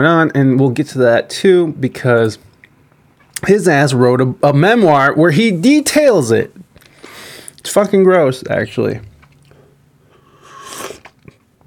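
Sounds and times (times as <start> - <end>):
speech: 0.0 - 2.5, 3.4 - 6.6, 7.6 - 9.1
person slurping hot tea: 10.2 - 11.3.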